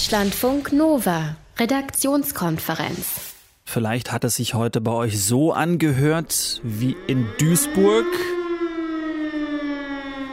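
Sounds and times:
speech: 0.0 - 8.4
civil defense warning siren wailing: 6.2 - 10.3.

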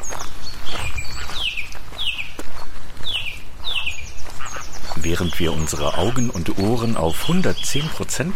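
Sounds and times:
thousands of black-headed gulls calling in a moorland landscape: 0.0 - 8.3
speech: 5.0 - 8.3.

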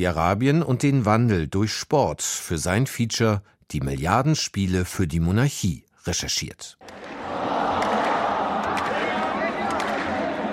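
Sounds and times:
speech: 0.0 - 7.1
large football stadium crowd cheering: 6.8 - 10.5.

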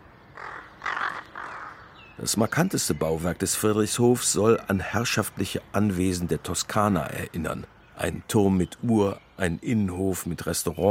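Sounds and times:
steady outdoor hiss: 0.0 - 10.8
crow flock cawing at a farm field estate: 0.3 - 2.1
speech: 2.2 - 10.8.

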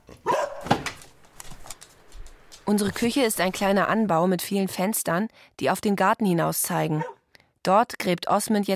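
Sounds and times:
dogs barking and yipping: 0.1 - 0.8, 7.0 - 7.2
speech: 2.7 - 8.7.

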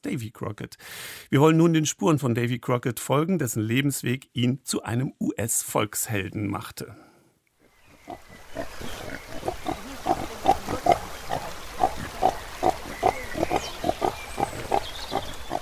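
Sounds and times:
speech: 0.0 - 7.1
faint farmyard noise: 7.8 - 15.6
pigs grunting on a farm on the Nolichucky River bank in eastern Tennessee: 8.0 - 15.6.

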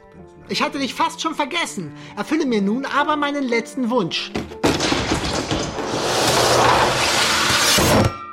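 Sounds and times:
speech: 0.5 - 4.6
ceiling hatches banging open: 4.6 - 8.2
falling executioner's axe blade crashing down: 5.0 - 8.2.

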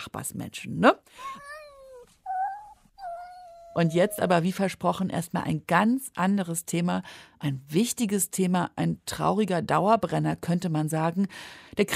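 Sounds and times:
speech: 0.1 - 1.5, 3.7 - 11.9
cat meowing: 1.2 - 4.3.

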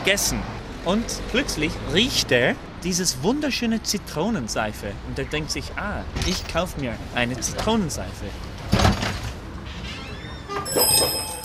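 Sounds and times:
speech: 0.0 - 8.5
white shop door opening with a clunk and rattle: 8.6 - 11.4
small bell above a shop door ringing: 10.7 - 11.4.

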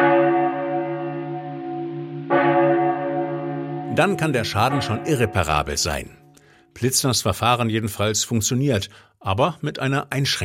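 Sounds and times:
cracked church bell struck and ringing: 0.0 - 6.7
speech: 4.0 - 6.2, 6.8 - 10.4.

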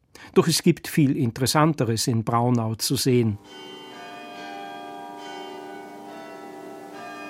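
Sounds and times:
speech: 0.4 - 3.8
glockenspiel bells in a town gate tower chiming in Braunau Austria: 3.4 - 7.2.

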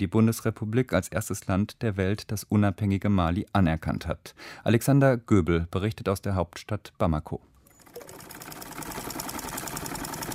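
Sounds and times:
speech: 0.0 - 8.0
sewing machine running: 7.7 - 10.3.

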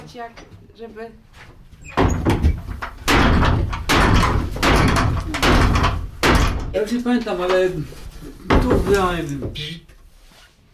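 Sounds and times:
speech: 0.1 - 2.4, 6.7 - 8.0, 8.6 - 9.9
door slamming shut with rattling ring: 1.9 - 6.8.

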